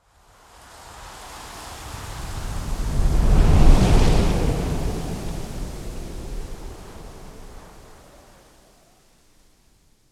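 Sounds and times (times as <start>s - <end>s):
strong desert wind blowing sand and dust: 0.6s - 8.6s.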